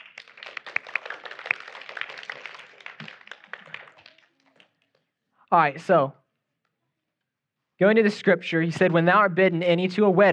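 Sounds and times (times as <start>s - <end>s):
audience applause: 0.0s - 4.7s
speech: 5.5s - 6.2s, 7.8s - 10.3s.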